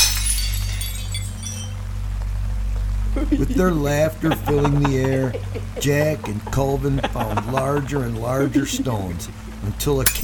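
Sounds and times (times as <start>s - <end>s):
window glass smashing and shattering: 0.0s - 1.8s
steady low rumble: 0.0s - 10.2s
laughter: 3.2s - 9.3s
speech: 3.3s - 10.2s.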